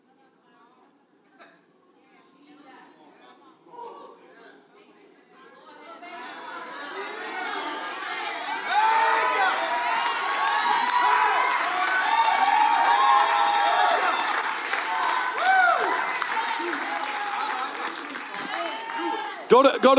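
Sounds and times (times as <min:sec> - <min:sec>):
audience shouting and cheering: 0:06.2 - 0:19.9
people whooping: 0:08.6 - 0:19.5
scattered clapping: 0:08.7 - 0:19.9
speech: 0:19.6 - 0:19.9.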